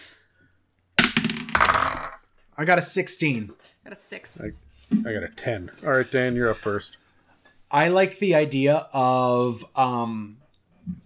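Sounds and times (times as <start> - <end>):
dice clattering across a hard surface: 1.0 - 2.3
speech: 2.6 - 7.0, 7.7 - 11.0.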